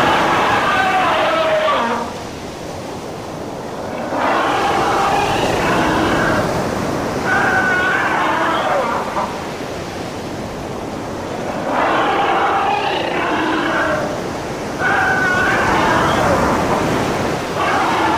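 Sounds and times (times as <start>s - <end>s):
monstrous sea creatures barking and groaning: 0.0s - 18.1s
steady rush of surf-like water noise: 0.0s - 18.1s.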